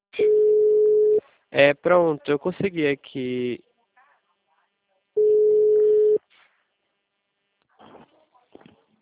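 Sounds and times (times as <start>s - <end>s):
telephone tone from a call back to a customer: 0.2s - 1.2s, 5.2s - 6.2s
speech: 1.5s - 3.7s.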